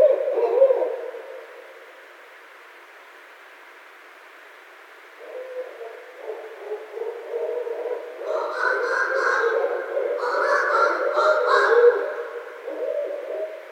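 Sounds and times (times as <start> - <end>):
barred owl hooting and caterwauling: 0.0 - 1.4, 5.2 - 13.7.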